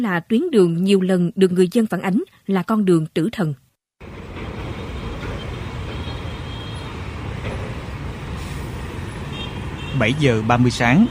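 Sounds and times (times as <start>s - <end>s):
speech: 0.0s - 3.6s, 10.0s - 11.0s
container trucks and heavy lorries driving on a congested port road: 4.0s - 11.0s.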